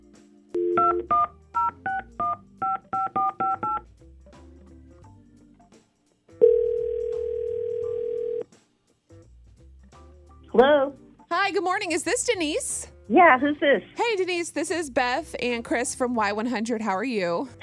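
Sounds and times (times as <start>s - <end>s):
telephone dial tone: 0.6s - 3.8s, 6.4s - 8.4s
speech: 11.6s - 17.6s.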